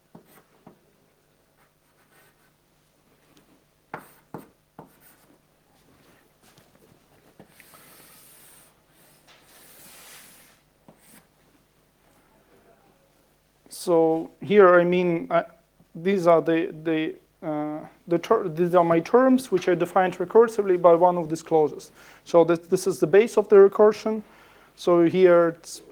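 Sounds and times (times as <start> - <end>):
handwriting scratching strokes: 0.1 - 0.5, 1.6 - 2.5, 4.0 - 5.4, 7.4 - 11.3
speech: 13.7 - 25.9.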